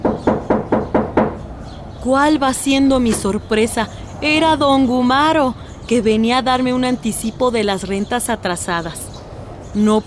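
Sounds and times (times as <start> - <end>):
knocking on an apartment door: 0.0 - 1.4
speech: 2.0 - 9.0, 9.7 - 10.0.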